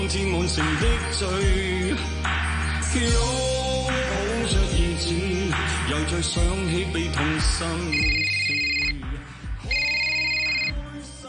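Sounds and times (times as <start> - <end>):
music: 0.0 - 11.2
speech: 0.1 - 2.3, 2.9 - 8.8
electronic telephone ring: 7.9 - 9.0, 9.7 - 10.8.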